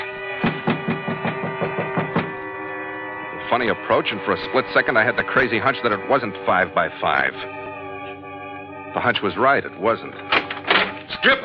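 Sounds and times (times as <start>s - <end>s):
steady droning hum: 0.0s - 11.2s
footsteps climbing stairs: 0.4s - 2.8s
speech: 3.5s - 7.6s, 9.0s - 10.4s, 11.2s - 11.4s.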